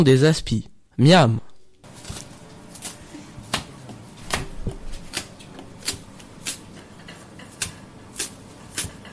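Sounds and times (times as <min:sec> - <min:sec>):
speech: 0:00.0 - 0:01.5
scissors snipping fresh chives: 0:05.0 - 0:06.7, 0:07.4 - 0:09.1.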